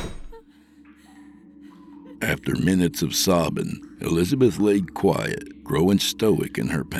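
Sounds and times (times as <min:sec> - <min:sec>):
heavy door slamming shut with a deep thud: 0:00.0 - 0:00.4
faint room hum: 0:00.0 - 0:06.9
speech: 0:02.2 - 0:06.9.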